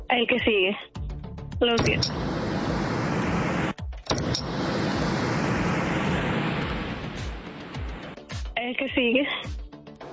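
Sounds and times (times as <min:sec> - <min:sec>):
speech: 0:00.1 - 0:00.9, 0:01.6 - 0:02.3, 0:08.7 - 0:09.5
steady rumble of broadband noise: 0:01.6 - 0:08.1.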